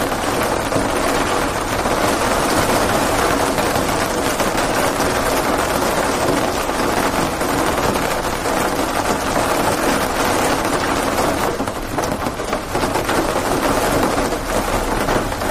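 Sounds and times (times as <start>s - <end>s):
rain on raincoat: 0.0s - 15.4s.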